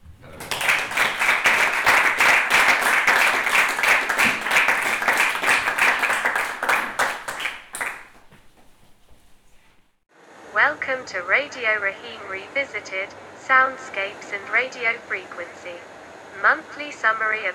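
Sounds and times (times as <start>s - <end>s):
audience applause: 0.0s - 8.6s
speech: 11.1s - 17.5s.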